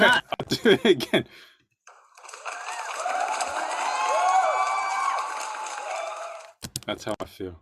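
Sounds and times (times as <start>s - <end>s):
speech: 0.0s - 1.5s, 6.9s - 7.6s
crowd clapping played from a soundboard: 1.9s - 6.6s
crowd whistling: 2.4s - 6.5s.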